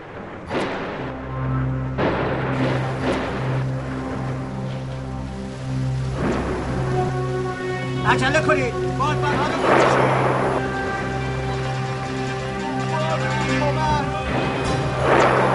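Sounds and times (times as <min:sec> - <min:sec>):
thunder cracks and rumbles: 0:00.0 - 0:05.4, 0:06.1 - 0:07.3, 0:09.4 - 0:12.4, 0:14.3 - 0:15.5
low droning hum: 0:00.0 - 0:15.5
steady rain during a storm: 0:00.0 - 0:15.5
speech: 0:08.1 - 0:10.3.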